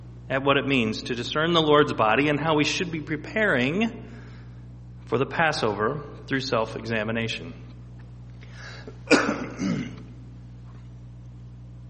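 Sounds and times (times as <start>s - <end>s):
speech: 0.3s - 4.2s, 5.1s - 7.6s
rough low throat clearing: 8.7s - 10.2s
sharp cough from a lingering cough: 8.8s - 10.2s.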